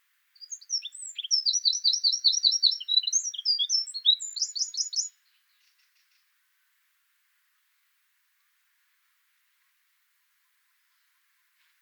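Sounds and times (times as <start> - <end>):
Eurasian wren song, Troglodytes troglodytes: 0.4 - 6.1.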